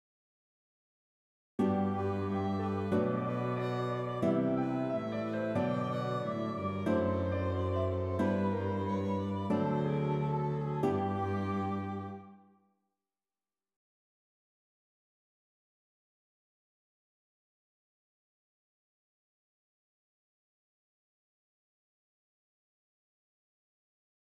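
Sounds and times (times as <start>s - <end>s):
classical and jazz music: 1.6s - 12.3s.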